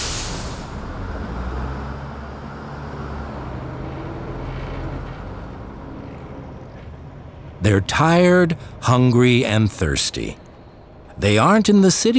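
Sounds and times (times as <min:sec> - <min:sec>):
bus air brake hiss: 0:00.0 - 0:00.8
large bus engine rumbling: 0:00.0 - 0:12.1
speech: 0:07.7 - 0:10.4, 0:11.2 - 0:12.1.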